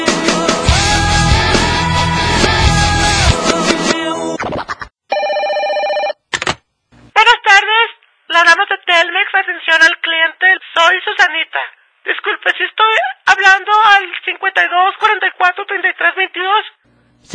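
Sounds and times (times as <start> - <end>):
loud music: 0.0 - 4.4
telephone ringing with a steady electronic tone: 5.1 - 6.2
person speaking: 7.2 - 17.3.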